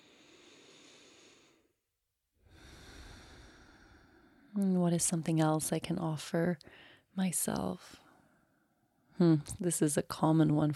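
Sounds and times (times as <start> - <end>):
slow deep breathing: 0.0 - 1.8, 2.4 - 4.6, 6.6 - 7.1
speech: 4.6 - 8.0, 9.2 - 10.7.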